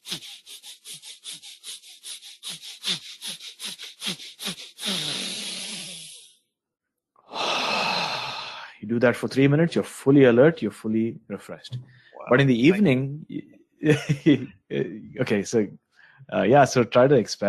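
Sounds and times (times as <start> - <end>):
rapid forceful diaphragm-pumping breathing: 0.0 - 6.3, 7.3 - 8.8
speech: 8.9 - 17.4
laughter: 13.8 - 15.0.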